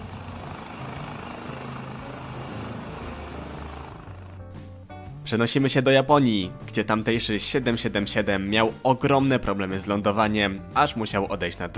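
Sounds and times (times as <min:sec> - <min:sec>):
helicopter flying: 0:00.0 - 0:05.1
speech: 0:05.3 - 0:11.7.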